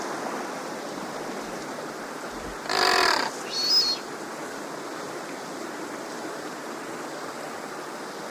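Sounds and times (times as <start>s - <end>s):
loud rushing water: 0.0s - 8.2s
blue duck giving harsh harmonic rasping note and high whistle: 2.8s - 4.0s.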